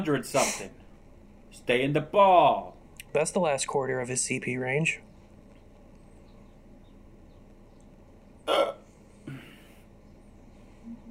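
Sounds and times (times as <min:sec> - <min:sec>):
speech: 0:00.0 - 0:00.8, 0:01.5 - 0:05.1
quiet hum: 0:00.0 - 0:11.0
single sharp hiccup: 0:08.4 - 0:09.5.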